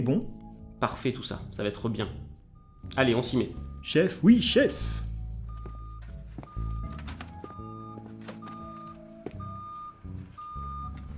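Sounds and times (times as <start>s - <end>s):
speech: 0.0s - 5.0s
semi-trailer truck reversing beeps while parking: 2.5s - 4.0s, 4.7s - 11.1s
traffic noise: 4.8s - 11.1s.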